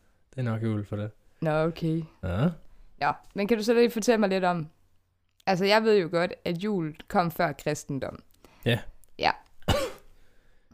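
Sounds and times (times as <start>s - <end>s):
speech: 0.3s - 4.8s, 5.5s - 9.4s
person coughing: 9.6s - 10.1s
person sneezing: 9.7s - 10.1s.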